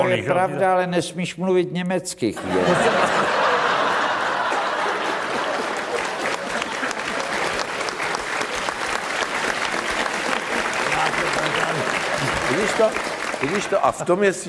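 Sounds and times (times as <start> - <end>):
speech: 0.0 - 3.4, 12.8 - 14.4
people chuckling: 2.4 - 8.2, 9.8 - 13.7
audience applause: 2.6 - 14.4.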